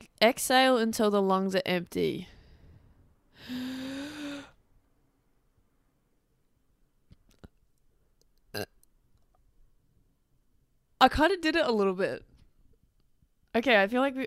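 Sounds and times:
speech: 0.2s - 2.4s, 3.4s - 3.8s, 11.0s - 12.3s, 13.5s - 14.2s
forced croaky burp: 8.5s - 8.8s.

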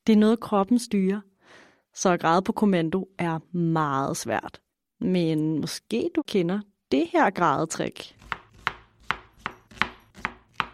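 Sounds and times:
speech: 0.0s - 1.3s, 2.0s - 8.3s
knife chopping an onion on a cutting board: 8.2s - 10.7s.

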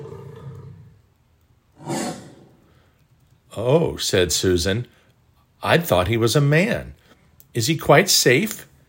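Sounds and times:
lion roaring: 0.0s - 1.0s, 1.8s - 2.7s
speech: 3.6s - 5.0s, 5.6s - 7.0s, 7.6s - 8.7s.

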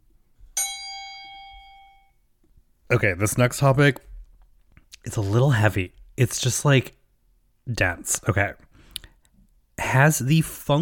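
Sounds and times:
bright metallic bell ding: 0.6s - 2.2s
speech: 2.9s - 4.1s, 5.0s - 7.0s, 7.7s - 8.6s, 9.9s - 10.8s.

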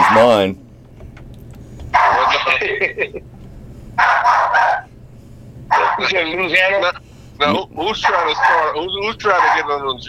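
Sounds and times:
pet dog barking: 0.0s - 0.4s, 1.9s - 2.6s, 4.0s - 4.9s, 5.7s - 6.2s, 8.0s - 9.9s
speech: 0.2s - 0.6s, 2.6s - 3.3s, 4.0s - 4.8s, 6.0s - 10.0s
laughter: 2.1s - 3.3s.

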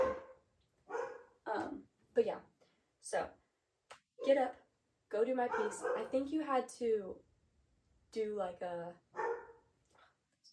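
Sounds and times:
dog barking: 0.0s - 1.3s, 5.5s - 6.2s, 9.2s - 9.7s
speech: 1.6s - 3.4s, 4.2s - 7.3s, 8.1s - 9.0s.

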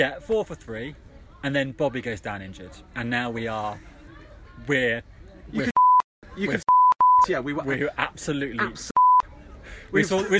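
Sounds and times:
speech: 0.0s - 3.9s, 4.6s - 5.8s, 6.4s - 9.0s, 9.9s - 10.3s
lively talk: 0.0s - 10.3s
short censor bleeps: 5.7s - 6.1s, 6.7s - 7.3s, 9.0s - 9.3s.

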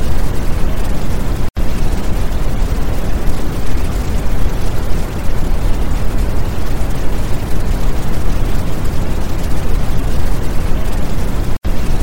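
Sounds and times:
brown noise: 0.0s - 12.0s.

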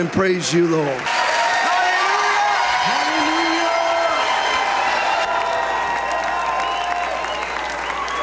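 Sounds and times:
speech: 0.0s - 1.3s
church audience clapping: 0.0s - 8.2s
church audience shouting amen and cheering in praise: 0.0s - 8.2s
church audience whooping: 1.1s - 8.2s.

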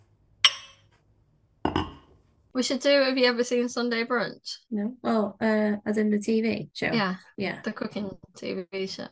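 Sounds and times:
drinking glasses clinking in a toast: 0.4s - 0.8s, 1.7s - 2.0s
speech: 2.6s - 9.1s.

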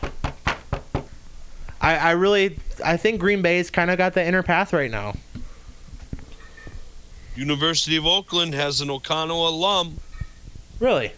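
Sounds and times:
sharp hollow knocks on wood: 0.0s - 1.1s
speech: 1.8s - 5.2s, 7.4s - 10.0s, 10.8s - 11.1s.

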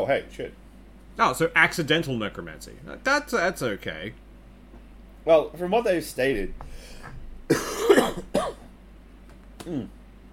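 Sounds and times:
speech: 0.0s - 0.6s, 1.2s - 4.2s, 5.2s - 8.6s, 9.6s - 10.0s
harsh hacking coughs: 7.5s - 8.7s.

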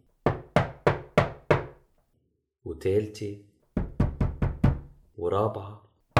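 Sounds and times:
knocking on an old wooden door: 0.2s - 1.8s, 3.8s - 5.0s
speech: 2.6s - 3.5s, 5.2s - 5.9s.

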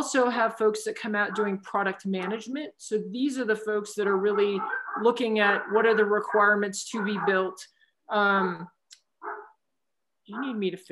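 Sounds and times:
speech: 0.0s - 8.8s, 10.3s - 10.8s
two dogs barking: 1.2s - 2.5s, 3.9s - 7.6s, 9.2s - 9.6s, 10.3s - 10.6s.

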